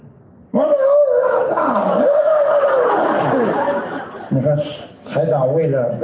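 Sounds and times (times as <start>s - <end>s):
man imitating a wolf howl: 0.6s - 3.0s
laughter: 1.2s - 6.0s
speech: 4.4s - 4.8s.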